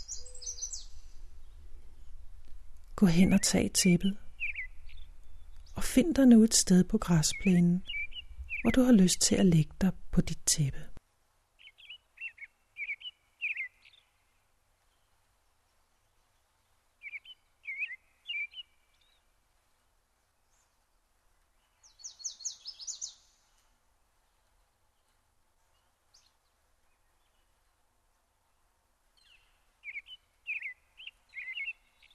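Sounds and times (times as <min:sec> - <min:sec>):
birds chirping and singing: 0:00.0 - 0:01.6, 0:03.0 - 0:05.8, 0:06.6 - 0:09.4, 0:21.8 - 0:23.2, 0:29.2 - 0:32.1
speech: 0:03.0 - 0:04.2, 0:06.0 - 0:08.0, 0:08.6 - 0:10.9.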